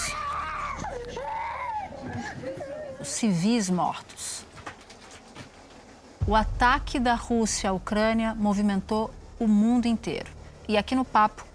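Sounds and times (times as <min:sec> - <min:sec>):
several people screaming and wailing: 0:00.0 - 0:02.6
speech: 0:03.2 - 0:04.3, 0:06.3 - 0:11.5.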